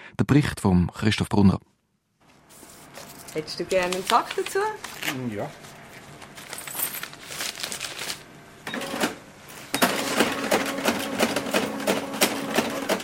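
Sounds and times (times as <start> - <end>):
speech: 0.1 - 1.7, 3.4 - 5.6
cash register clattering and whirring through a sale at a record shop: 8.7 - 13.0.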